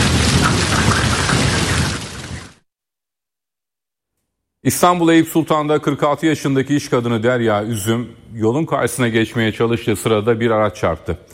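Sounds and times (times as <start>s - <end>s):
hail and rain pouring down during a storm in Ankara: 0.0s - 2.6s
speech: 4.6s - 11.3s.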